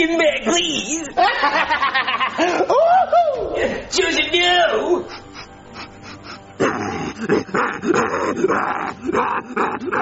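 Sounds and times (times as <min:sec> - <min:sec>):
speech: 0:00.0 - 0:05.2, 0:07.2 - 0:10.0
laughter: 0:01.1 - 0:03.9, 0:04.8 - 0:06.5
dog snarling and growling aggressively: 0:06.6 - 0:10.0.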